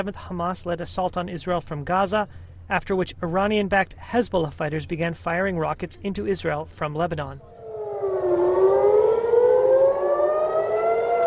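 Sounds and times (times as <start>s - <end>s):
speech: 0.0s - 7.6s
air raid siren wailing across the border town of Nahariya in northern Israel: 7.5s - 11.2s.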